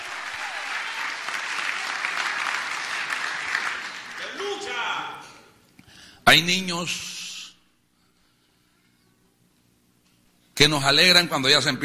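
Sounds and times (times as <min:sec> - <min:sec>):
person cheering: 0:00.0 - 0:01.1, 0:04.2 - 0:05.2
audience applause: 0:00.0 - 0:04.8
speech: 0:06.3 - 0:07.1, 0:10.6 - 0:11.8.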